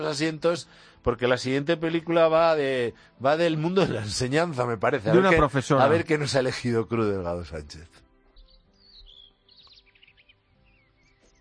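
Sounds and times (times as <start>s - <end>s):
speech: 0.0s - 8.0s
small birds chirping: 8.2s - 11.3s.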